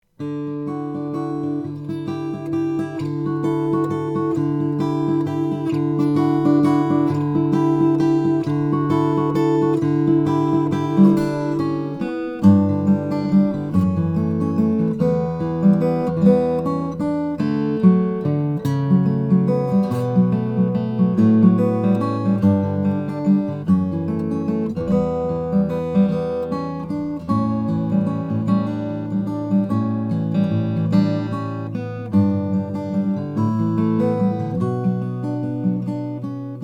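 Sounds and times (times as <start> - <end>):
Santa Cruz OM Mayan walnut sunburst guitars: 0.1 - 36.6.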